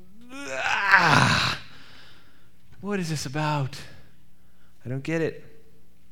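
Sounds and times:
person groaning: 0:00.2 - 0:01.7
speech: 0:02.9 - 0:04.0, 0:04.8 - 0:05.5.

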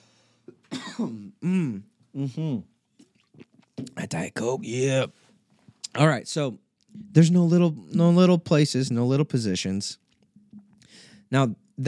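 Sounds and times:
speech: 0:00.5 - 0:02.7, 0:04.0 - 0:05.2, 0:06.0 - 0:10.0, 0:11.3 - 0:11.8
person coughing: 0:00.6 - 0:02.6
throat clearing: 0:00.6 - 0:02.7.

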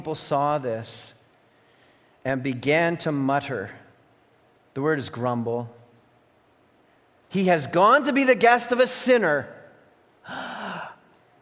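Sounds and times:
speech: 0:00.0 - 0:01.2, 0:02.2 - 0:03.8, 0:04.8 - 0:05.8, 0:07.3 - 0:09.6, 0:10.3 - 0:10.5
dramatic gasp: 0:10.2 - 0:11.1.

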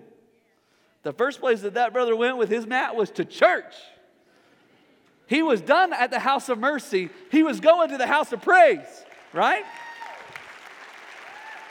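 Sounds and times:
speech: 0:01.0 - 0:04.0, 0:05.3 - 0:09.9
audience clapping: 0:06.5 - 0:11.7
crowd shouting and cheering: 0:09.4 - 0:10.4, 0:11.2 - 0:11.7.

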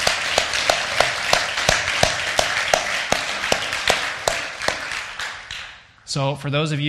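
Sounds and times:
crowd applauding: 0:00.0 - 0:05.9
speech: 0:06.1 - 0:06.8.

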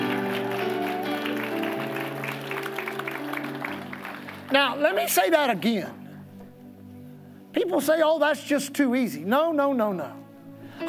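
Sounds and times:
audience clapping in dense sustained applause: 0:00.0 - 0:05.1
speech: 0:04.5 - 0:06.0, 0:07.7 - 0:10.2.

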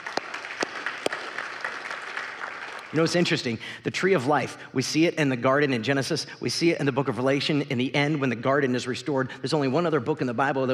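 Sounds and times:
audience applauding: 0:00.0 - 0:03.3
speech: 0:02.9 - 0:10.7.

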